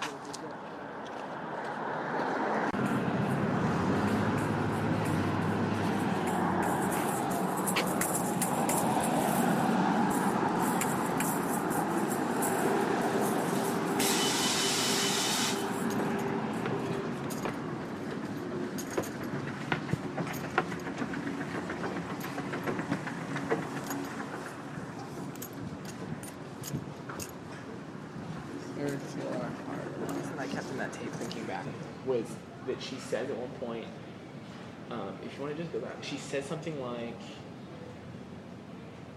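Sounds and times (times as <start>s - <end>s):
city bus road noise: 0.0s - 39.1s
general street traffic: 0.0s - 39.1s
city bus heavy engine rumbling past a bus stop: 2.3s - 32.5s
brief airy hiss: 11.8s - 15.8s
speech: 35.4s - 37.4s.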